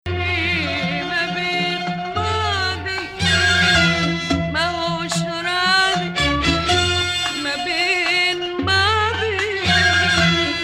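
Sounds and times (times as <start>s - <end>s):
melody in Hijazkar mode: 0.1s - 10.6s.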